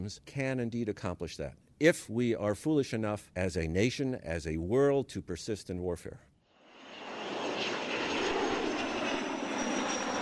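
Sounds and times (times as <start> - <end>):
speech: 0.0 - 6.3
X-47B unmanned combat aircraft jet engine roar during trials at a military base in Maryland: 6.6 - 10.2.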